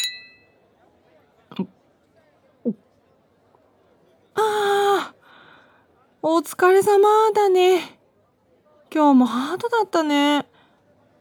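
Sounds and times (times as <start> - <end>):
glasses clinking in a toast: 0.0 - 0.5
speech: 1.6 - 1.8, 6.3 - 8.0, 8.9 - 10.5.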